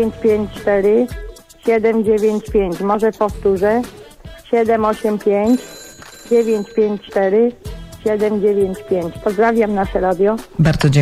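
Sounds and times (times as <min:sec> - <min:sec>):
speech: 0:00.0 - 0:11.0
telephone ringing for an incoming call: 0:04.8 - 0:09.4.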